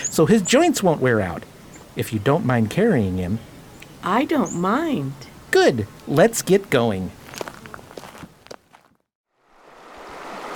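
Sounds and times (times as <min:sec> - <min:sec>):
speech: 0:00.2 - 0:07.2
footsteps crunching: 0:05.5 - 0:09.1
flowing river water: 0:09.4 - 0:10.5.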